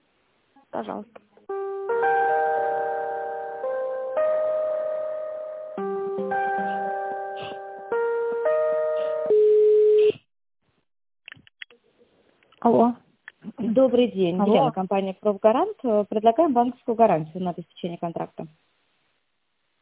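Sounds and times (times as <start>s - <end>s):
speech: 0.8s - 2.1s, 13.8s - 18.7s
electronic melodic ringing tone on a phone line during call transfer: 1.5s - 9.9s.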